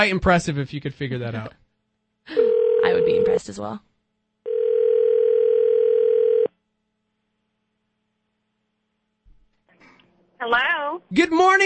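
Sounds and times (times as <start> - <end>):
speech: 0.0 - 1.6, 3.0 - 3.9, 10.4 - 11.6
telephone dial tone: 2.4 - 3.2, 4.5 - 6.5.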